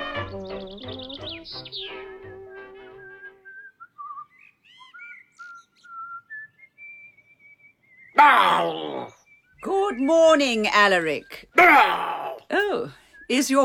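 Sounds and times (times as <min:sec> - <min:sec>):
person whistling a thin wandering tune: 0:02.2 - 0:04.4, 0:05.0 - 0:08.1, 0:13.0 - 0:13.4
speech: 0:10.1 - 0:13.6.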